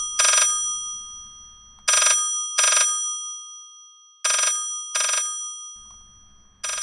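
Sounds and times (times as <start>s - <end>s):
telephone bell ringing: 0.0s - 2.8s, 4.3s - 6.8s.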